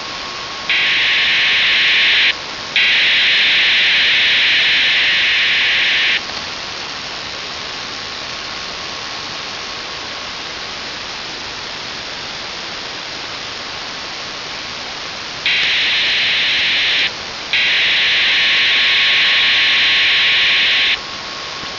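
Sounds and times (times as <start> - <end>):
16.858 MHz radio data signal at 2400 baud: 0.7 - 6.2, 15.5 - 21.0.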